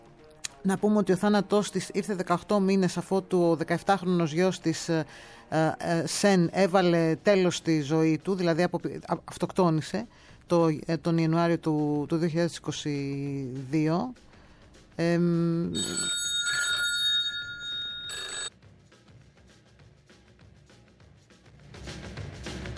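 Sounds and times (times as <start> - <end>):
speech: 0.6 - 14.3, 15.0 - 16.2
mobile phone ringing with a bright electronic ringtone: 15.8 - 18.5.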